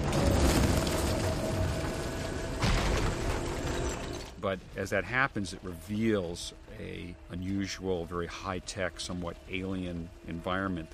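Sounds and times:
falling debris clattering: 0.0 - 4.4
collapsing temple rumble: 0.0 - 4.5
speech: 4.4 - 10.9.

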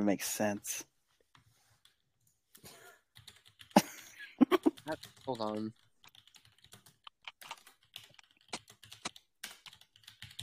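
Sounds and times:
speech: 0.0 - 0.9, 4.9 - 5.8
keys clicking on a computer keyboard: 3.2 - 3.8, 4.8 - 10.4.

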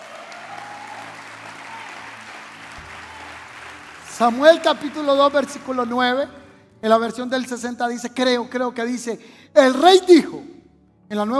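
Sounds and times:
audience applauding in a reverberant room: 0.0 - 6.5
speech: 4.2 - 10.5, 11.1 - 11.3.

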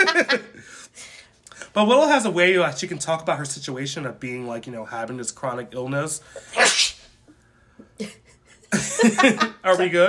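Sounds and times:
laughter: 0.0 - 0.6, 8.0 - 10.0
speech: 1.8 - 6.9, 8.0 - 10.0
person sneezing: 6.4 - 7.2.

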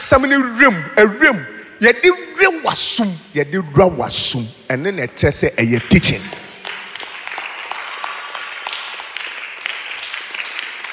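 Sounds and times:
speech: 0.1 - 6.4
audience at a sermon clapping: 5.6 - 10.9.

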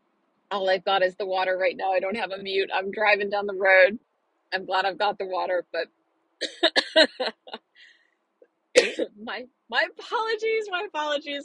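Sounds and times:
speech: 0.5 - 7.6, 8.8 - 11.4
driver coughing and choking in a car: 6.4 - 7.4, 8.8 - 9.2.

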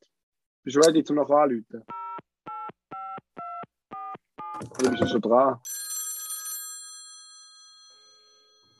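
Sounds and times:
speech: 0.6 - 2.0, 4.6 - 5.7
electronic telephone keypad tones of a number being dialed: 1.9 - 5.2
telephone bell ringing on an outgoing call: 4.8 - 8.7.

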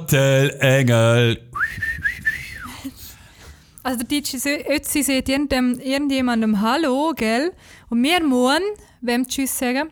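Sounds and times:
speech: 0.1 - 1.8, 3.8 - 9.9
person whistling a melodic phrase: 1.6 - 3.0.

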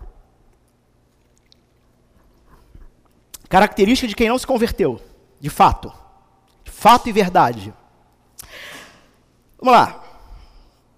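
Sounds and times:
low hum: 0.0 - 10.9
person sipping water: 0.4 - 3.5
wet mouth sounds: 0.5 - 3.5
swallowing: 0.6 - 3.4
speech: 3.5 - 6.0, 6.8 - 7.8, 9.6 - 10.0.

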